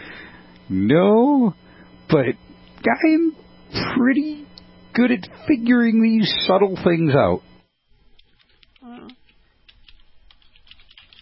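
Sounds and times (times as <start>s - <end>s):
speech: 0.7s - 4.4s, 5.0s - 7.5s
two people typing on computer keyboards: 8.2s - 8.9s, 9.6s - 11.2s.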